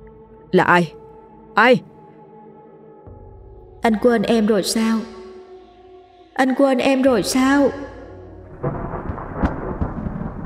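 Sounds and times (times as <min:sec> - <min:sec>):
speech: 0:00.5 - 0:01.0, 0:01.6 - 0:01.9, 0:03.8 - 0:05.2, 0:06.4 - 0:08.0
thunderclap: 0:08.4 - 0:10.4.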